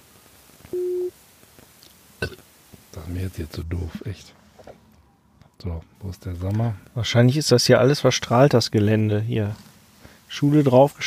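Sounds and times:
telephone busy tone while calling a mobile: 0:00.7 - 0:01.1
speech: 0:03.1 - 0:04.4, 0:05.6 - 0:09.7, 0:10.3 - 0:11.0.

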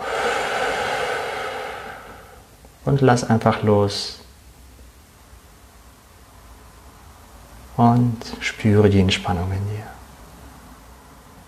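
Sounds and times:
deep slow breath during a guided relaxation exercise: 0:00.0 - 0:02.6
speech: 0:02.8 - 0:04.2, 0:07.8 - 0:10.0.

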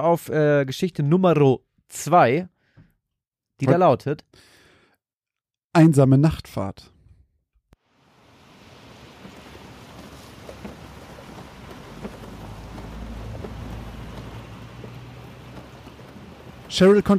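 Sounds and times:
speech: 0:00.0 - 0:02.5, 0:03.6 - 0:04.5, 0:05.8 - 0:06.9, 0:16.7 - 0:17.1
heavy rain pouring: 0:07.8 - 0:17.1
low rolling rumble of thunder: 0:08.1 - 0:17.1.

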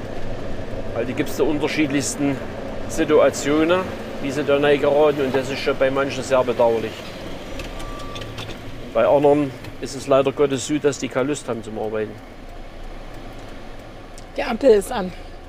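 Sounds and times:
low hum of street traffic: 0:00.0 - 0:15.4
speech: 0:01.0 - 0:07.1, 0:09.0 - 0:12.4, 0:14.4 - 0:15.3.

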